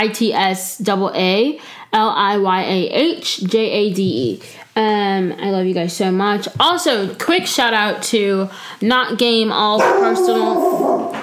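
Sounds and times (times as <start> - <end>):
speech: 0.0 - 11.0
dog barking: 9.8 - 11.2.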